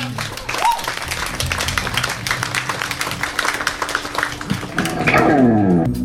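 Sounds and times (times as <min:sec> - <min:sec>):
crowd applauding: 0:00.0 - 0:05.9
person cheering: 0:00.5 - 0:01.0.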